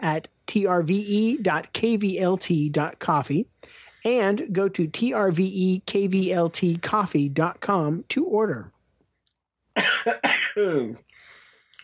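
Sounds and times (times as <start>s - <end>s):
speech: 0.0s - 8.8s, 9.8s - 11.0s
person coughing with harsh voiced bursts: 9.8s - 11.0s.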